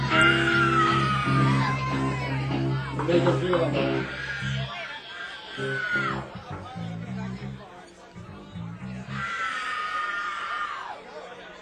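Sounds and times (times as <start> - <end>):
crowd of women in audience screaming and cheering: 0.0 - 6.4, 9.0 - 11.1
speech: 3.1 - 4.2.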